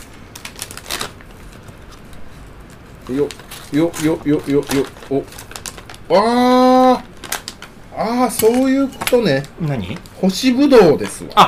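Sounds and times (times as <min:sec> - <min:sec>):
plastic bag of dried cranberries tearing open: 0:00.0 - 0:07.7
plastic snack packaging rustling: 0:00.0 - 0:11.4
speech: 0:03.1 - 0:05.4, 0:06.1 - 0:07.1, 0:08.0 - 0:11.4.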